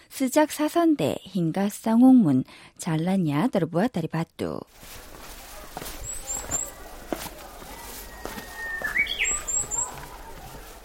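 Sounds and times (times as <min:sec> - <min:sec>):
speech: 0:00.1 - 0:05.1
soft footstep-like taps: 0:04.8 - 0:10.7
birds chirping and singing outdoors: 0:05.6 - 0:10.8.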